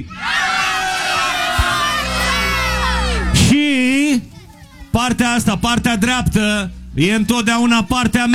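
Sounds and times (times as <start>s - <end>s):
large crowd of supporters shouting a rallying chant in unison: 0.0s - 3.5s
speech: 5.1s - 8.3s.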